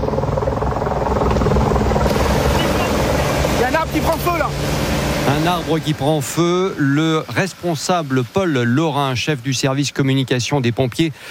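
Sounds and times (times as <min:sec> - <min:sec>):
water-bombing helicopters fighting a wildfire: 0:00.0 - 0:06.8
speech: 0:04.1 - 0:11.2.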